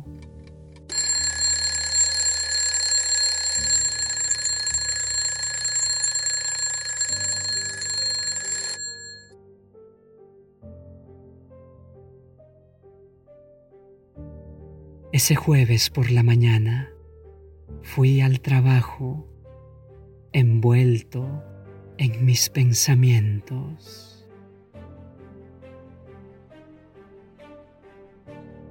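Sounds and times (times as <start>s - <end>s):
alarm clock ringing: 0.9s - 9.3s
speech: 15.2s - 17.0s, 18.0s - 19.3s, 20.4s - 24.1s.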